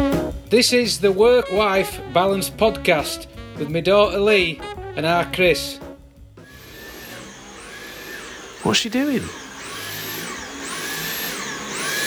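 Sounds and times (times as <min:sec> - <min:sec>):
speech: 0:00.5 - 0:05.8, 0:08.6 - 0:09.4
vacuum cleaner running and straining: 0:06.4 - 0:12.0.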